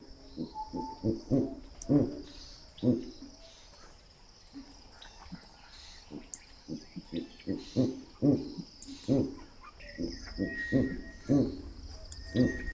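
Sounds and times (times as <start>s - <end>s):
Verreaux's eagle-owl calling: 0.0s - 3.3s, 6.1s - 12.7s.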